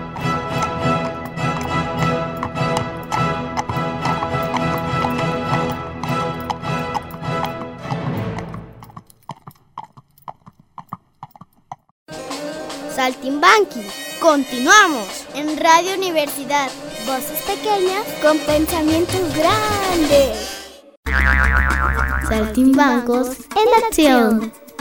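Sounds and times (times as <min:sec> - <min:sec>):
full busy music: 0:00.0 - 0:08.8, 0:12.1 - 0:20.5, 0:21.8 - 0:24.7
horse hooves clip-clopping at a steady trot: 0:00.0 - 0:11.9
speech: 0:13.0 - 0:20.5, 0:22.3 - 0:24.6.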